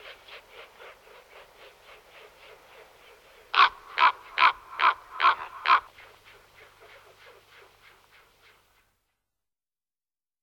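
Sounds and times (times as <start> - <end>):
common raven giving harsh hoarse croaks: 3.6 - 5.9.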